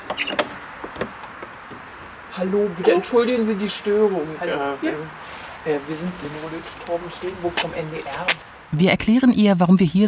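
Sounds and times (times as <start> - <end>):
front door knocks and shuffles as it swings: 0.0 - 2.2
speech: 0.2 - 0.5, 2.4 - 10.0.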